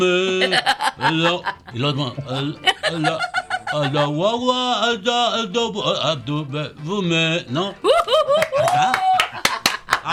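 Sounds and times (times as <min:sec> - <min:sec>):
speech: 0:00.0 - 0:08.0
laughter: 0:00.2 - 0:04.4, 0:07.8 - 0:10.1
sharp scattered handclaps: 0:08.4 - 0:10.1.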